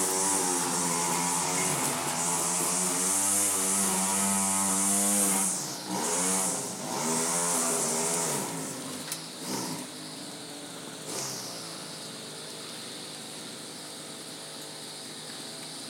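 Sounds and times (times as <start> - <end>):
chainsaw running at full volume in school grounds: 0.0 - 10.2, 10.9 - 13.3.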